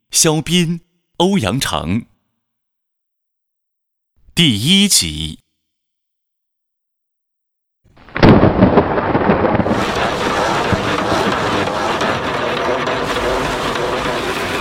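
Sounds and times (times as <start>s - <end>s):
speech: 0.1s - 2.1s, 4.4s - 5.4s
heavy rain hissing roar: 8.0s - 14.5s
thunder crack rolling into a rumble: 8.0s - 14.5s.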